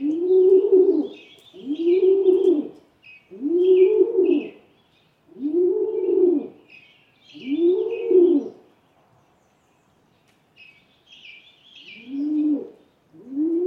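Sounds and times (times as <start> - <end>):
rock pigeon cooing: 0.0 - 4.7, 5.3 - 6.6, 7.3 - 8.6, 11.9 - 13.6.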